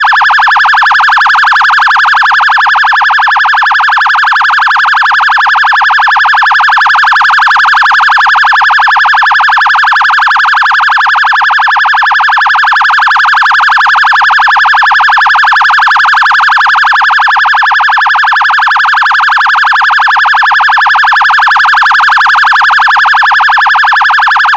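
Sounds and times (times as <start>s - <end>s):
electronic phaser siren: 0.0s - 24.5s.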